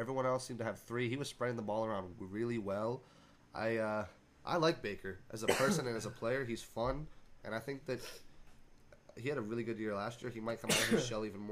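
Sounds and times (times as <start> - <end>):
speech: 0.0 - 8.3, 9.2 - 11.4
man sneezing: 10.7 - 11.1.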